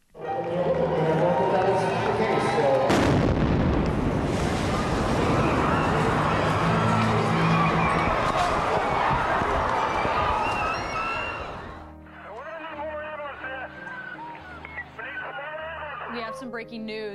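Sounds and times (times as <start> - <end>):
busy outdoor crowd murmuring and cheering: 0.1 - 3.2, 3.8 - 16.5
loud explosion at marathon finish line: 2.9 - 9.3
speech: 16.6 - 17.1.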